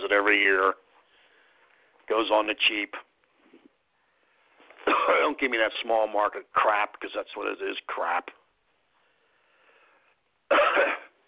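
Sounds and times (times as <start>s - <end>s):
speech: 0.1s - 0.9s, 2.1s - 3.1s, 4.9s - 8.4s, 10.5s - 11.0s
man coughing: 4.8s - 5.4s, 10.5s - 11.2s.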